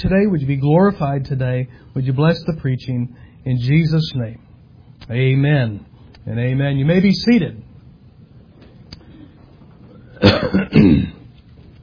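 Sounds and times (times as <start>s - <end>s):
speech: 0.0s - 4.5s, 5.1s - 7.7s, 10.4s - 11.2s
person clearing throat: 10.2s - 11.3s
person coughing: 10.2s - 11.3s.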